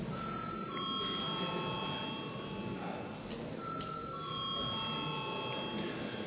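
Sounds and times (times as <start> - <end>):
murmur of voices: 0.0 - 6.2
electronic voting bell ringing in a parliament: 0.1 - 3.0, 3.6 - 6.2.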